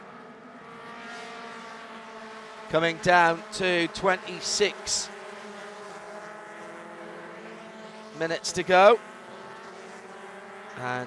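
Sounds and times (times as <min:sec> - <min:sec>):
Mazda MX-5 race car engines roaring on a track: 0:00.0 - 0:11.0
speech: 0:02.7 - 0:05.2, 0:08.2 - 0:09.1, 0:10.8 - 0:11.0.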